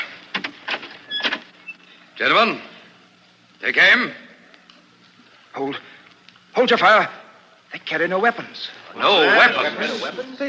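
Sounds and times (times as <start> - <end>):
faint door squeak: 1.0 - 1.8
speech: 2.2 - 2.7, 3.6 - 4.2, 5.6 - 5.9, 6.6 - 10.4.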